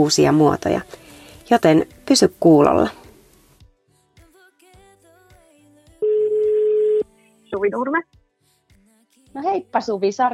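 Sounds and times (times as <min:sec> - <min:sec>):
speech: 0:00.0 - 0:03.0, 0:07.6 - 0:08.1, 0:09.3 - 0:10.3
telephone ringback tone during an outgoing call: 0:06.0 - 0:07.0.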